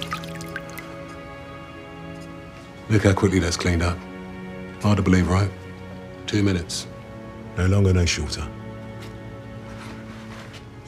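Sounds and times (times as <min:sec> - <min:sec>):
liquid dripping: 0:00.0 - 0:01.4
speech: 0:02.9 - 0:04.1, 0:04.8 - 0:05.6, 0:06.3 - 0:06.9, 0:07.6 - 0:08.6.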